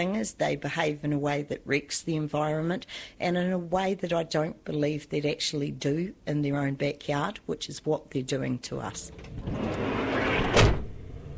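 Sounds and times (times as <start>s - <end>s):
speech: 0.0s - 10.0s
small camper van sliding side door rumbling along its track: 9.1s - 11.3s.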